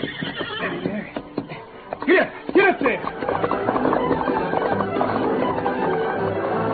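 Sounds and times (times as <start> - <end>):
horse whinnying: 0.0 - 1.6
sharp horse hoof knocks: 0.0 - 6.6.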